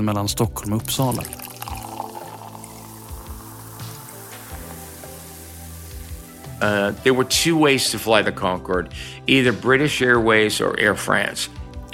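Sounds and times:
speech: 0.0s - 1.4s, 6.6s - 11.9s
champagne pouring into a glass: 0.5s - 8.2s
champagne fizz: 0.6s - 7.9s.

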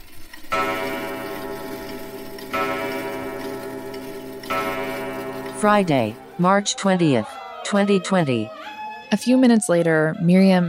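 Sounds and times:
clock striking midnight: 0.2s - 6.6s
speech: 5.6s - 10.6s.

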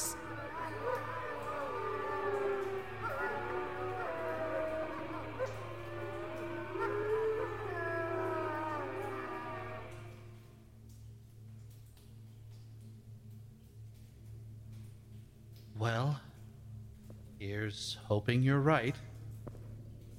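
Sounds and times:
creatures howling outside a cave: 0.0s - 10.5s
speech: 17.7s - 19.1s.

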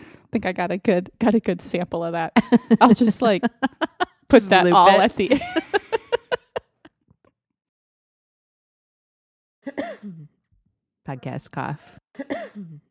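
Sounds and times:
speech: 0.3s - 5.8s, 11.1s - 12.8s
laughter: 2.4s - 6.9s
person coughing deliberately into a microphone: 9.7s - 10.3s, 12.2s - 12.9s.

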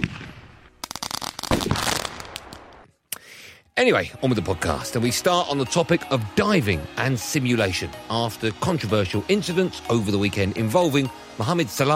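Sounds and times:
firecrackers popping and crackling: 0.0s - 2.9s
speech: 3.8s - 11.9s.

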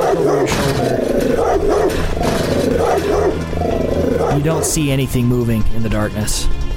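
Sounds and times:
dog barking and snarling ferociously in a dark neighbourhood: 0.0s - 4.8s
speech: 4.4s - 6.6s.

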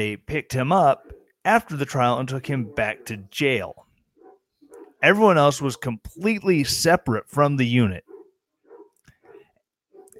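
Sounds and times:
speech: 0.0s - 3.8s, 5.0s - 8.1s
dog barking outside: 0.9s - 1.4s, 2.5s - 3.3s, 4.2s - 5.0s, 8.1s - 10.1s.

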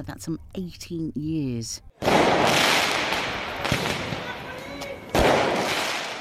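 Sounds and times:
speech: 0.0s - 2.9s
fireworks thrown during street riots exploding with sharp loud bangs: 2.0s - 6.1s.

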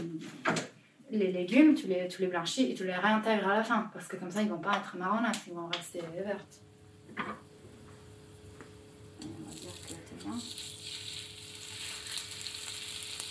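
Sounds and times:
speech: 0.2s - 7.4s, 9.5s - 10.6s
chicken sizzling in a frying pan: 8.1s - 13.3s.

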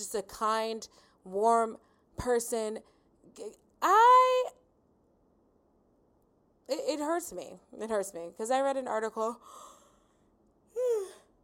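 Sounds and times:
speech: 0.0s - 4.6s, 6.7s - 9.7s
yawn: 10.7s - 11.4s.

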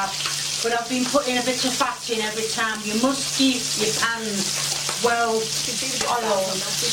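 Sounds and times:
buttered white bread frying in a crusty well-greased pan: 0.0s - 6.9s.

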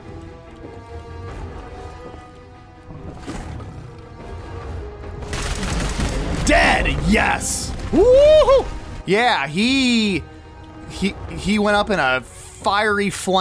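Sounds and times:
focused fiery institute rifle firing in a video game: 5.2s - 6.5s
speech: 6.5s - 10.3s, 11.0s - 13.3s.

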